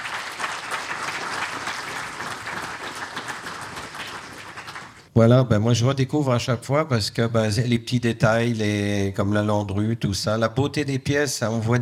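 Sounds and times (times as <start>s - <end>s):
audience applause: 0.0s - 5.1s
speech: 5.2s - 11.8s.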